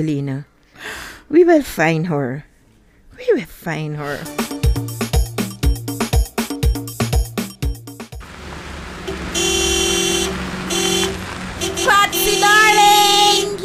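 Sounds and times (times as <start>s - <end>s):
speech: 0.0s - 0.5s, 1.3s - 2.5s, 3.2s - 4.5s
loud rhythmic music: 4.3s - 8.2s
car engine rumbling as a car on a test drive pulls up: 8.2s - 13.6s.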